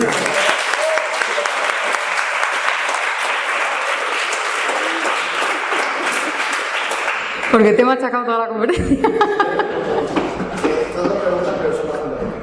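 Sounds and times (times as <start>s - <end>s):
audience applause at a lecture on economics: 0.0s - 7.7s
laughter: 4.6s - 6.8s, 8.7s - 12.2s
speech: 7.6s - 9.7s.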